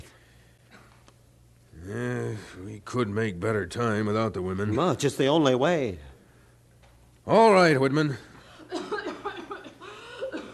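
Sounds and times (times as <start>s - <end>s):
speech: 1.9s - 6.1s, 7.3s - 8.3s
woman coughing in short rasping bursts: 8.7s - 10.5s.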